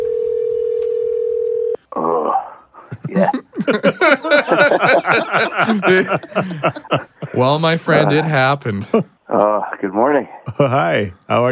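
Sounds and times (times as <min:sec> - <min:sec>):
phone ringback tone of an outgoing call: 0:00.0 - 0:01.8
laughter: 0:02.9 - 0:09.1
speech: 0:04.8 - 0:11.4.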